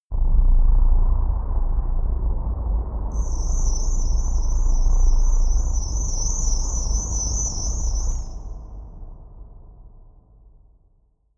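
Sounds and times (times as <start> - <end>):
dark rumble: 0.1 - 10.5
drones: 0.2 - 8.9
crickets chirping: 3.2 - 8.9.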